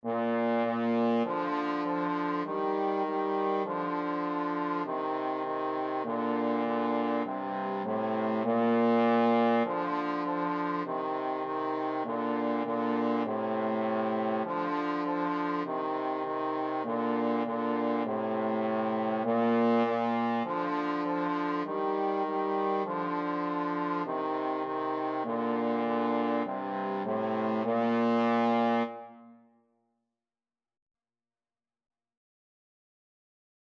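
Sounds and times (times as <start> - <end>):
trombone duet playing a nursery rhyme: 0.0 - 29.1.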